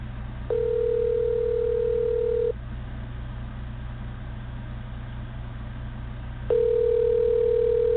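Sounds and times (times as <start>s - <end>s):
constant low hum: 0.0s - 7.9s
electronic ringback tone of a telephone call to a cell phone: 0.5s - 2.5s, 6.5s - 7.9s.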